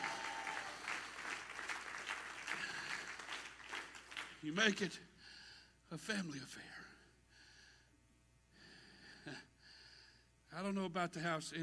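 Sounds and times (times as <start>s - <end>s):
scattered cheers: 0.0s - 1.1s
large group clapping: 0.0s - 4.4s
speech: 4.4s - 5.1s, 5.9s - 6.8s, 9.2s - 9.5s, 10.5s - 11.6s.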